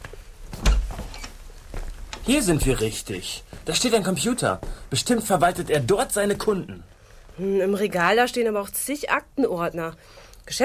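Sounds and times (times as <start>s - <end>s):
faint steady hiss: 0.0s - 10.6s
shop door opening with a dull thump: 0.6s - 1.3s
speech: 2.3s - 10.6s.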